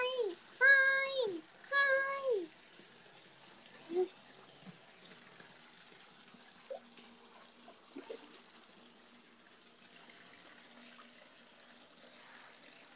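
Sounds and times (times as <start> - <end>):
bathwater sloshing in a bathtub: 0.0 - 12.9
small splashes of bathwater in a tub: 0.0 - 12.9.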